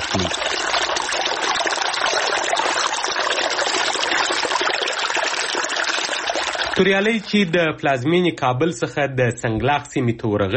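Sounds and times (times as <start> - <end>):
small river flowing past fruit trees in the Sanglakh area: 0.0 - 6.8
speech: 0.2 - 0.6, 6.8 - 10.5.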